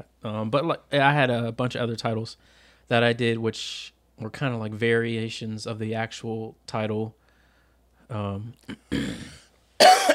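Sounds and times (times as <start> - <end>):
speech: 0.0 - 7.2, 8.1 - 10.1
person coughing with throat-clearing rasp and harsh hacks: 8.7 - 10.1.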